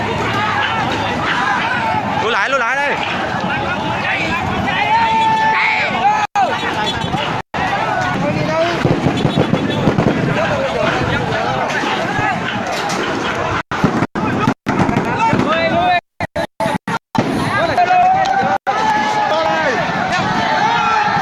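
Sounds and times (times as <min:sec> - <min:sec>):
people shouting: 0:00.0 - 0:13.6, 0:14.2 - 0:21.2
loud agitated protest crowd in Phan Rí Cửa Bình Thuận: 0:00.0 - 0:21.2
running commotion: 0:00.0 - 0:21.2
sharp gunshot-like bursts at a protest in Phan Rí Cửa Bình Thuận: 0:13.0 - 0:17.6.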